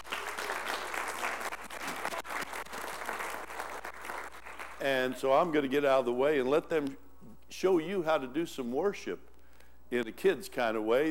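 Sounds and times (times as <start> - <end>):
audience applause: 0.0 - 4.8
speech: 4.8 - 9.3, 9.9 - 11.1.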